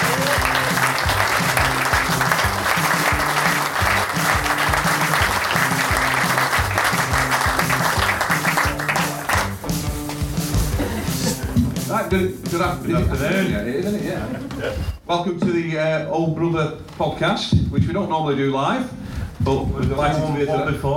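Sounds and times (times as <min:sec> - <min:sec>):
sizable crowd applauding at a live event: 0:00.0 - 0:11.3
laughter: 0:10.5 - 0:11.9, 0:12.7 - 0:15.0
speech: 0:12.1 - 0:20.9.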